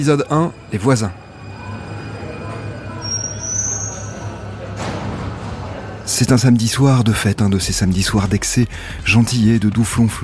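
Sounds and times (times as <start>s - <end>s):
speech: 0.0s - 1.2s, 6.1s - 10.2s
suburban train wheels letting out a thin high squeal: 0.0s - 4.7s.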